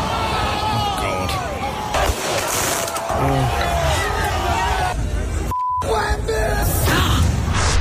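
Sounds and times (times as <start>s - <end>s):
street crowd shouting and celebrating outdoors: 0.0s - 7.1s
fireworks going off: 1.9s - 3.2s.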